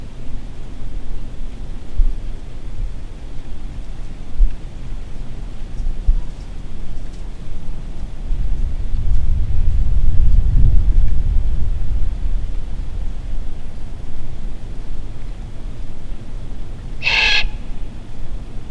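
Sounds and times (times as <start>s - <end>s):
low rumble: 0.0s - 18.6s
great horned owl Bubo virginianus screeching: 17.0s - 17.8s.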